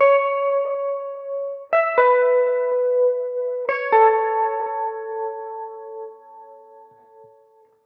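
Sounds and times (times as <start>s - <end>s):
wet guitar loop in A: 0.0s - 7.8s.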